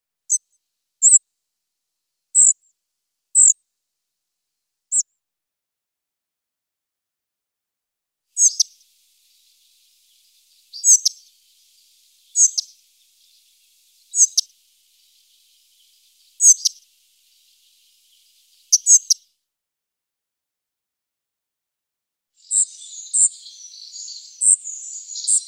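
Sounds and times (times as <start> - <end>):
spotted flycatcher calling: 8.4 - 19.2, 22.4 - 25.4.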